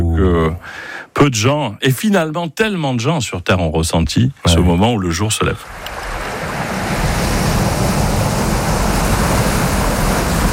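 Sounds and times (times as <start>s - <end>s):
speech: 0.2s - 5.8s
ocean waves on a beach: 5.6s - 10.5s.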